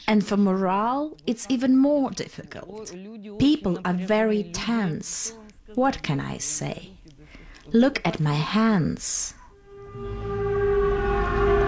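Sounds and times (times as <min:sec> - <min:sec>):
speech: 0:00.1 - 0:07.0, 0:07.7 - 0:10.3
air raid siren wailing at a port in Ukraine: 0:09.5 - 0:11.6
low rumbling background: 0:09.6 - 0:11.6.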